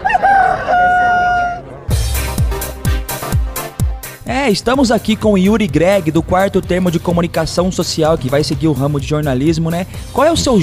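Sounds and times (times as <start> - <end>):
rooster crowing: 0.0 - 1.8
punchy rhythmic drum beats: 1.9 - 10.6
speech: 4.5 - 10.6.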